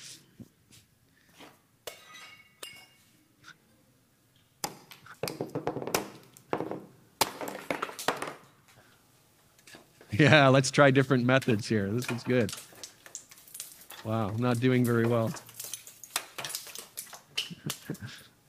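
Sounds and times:
pottery being smashed: 0:04.6 - 0:08.5, 0:11.5 - 0:17.9
speech: 0:10.2 - 0:12.7, 0:14.1 - 0:15.5.

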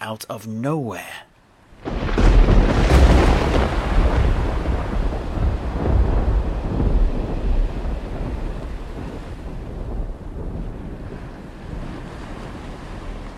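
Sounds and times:
speech: 0:00.0 - 0:02.7
gusting wind: 0:01.6 - 0:13.3
loud deep rumble of thunder: 0:01.7 - 0:13.3
steady driving rain: 0:01.7 - 0:13.3.

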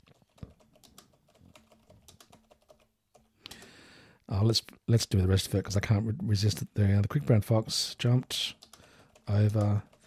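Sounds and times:
typing on a braille display keyboard: 0:00.0 - 0:03.7, 0:08.4 - 0:10.0
speech: 0:04.3 - 0:08.7, 0:09.3 - 0:09.9.

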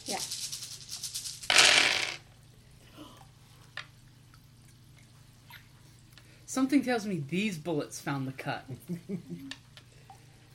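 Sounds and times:
many dice tumbling across a surface: 0:00.3 - 0:02.2
speech: 0:06.6 - 0:09.7.

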